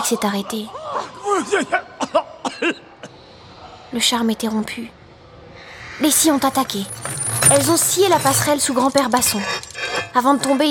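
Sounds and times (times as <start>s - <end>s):
speech: 0.1s - 2.9s, 3.9s - 5.0s, 6.0s - 10.6s
tired old grandfather character coughing in a children's musical tale: 1.3s - 2.9s.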